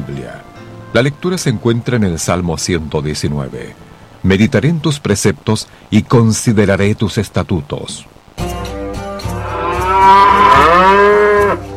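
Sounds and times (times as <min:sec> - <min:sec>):
speech: 0:00.2 - 0:08.2
cow mooing: 0:09.3 - 0:11.7.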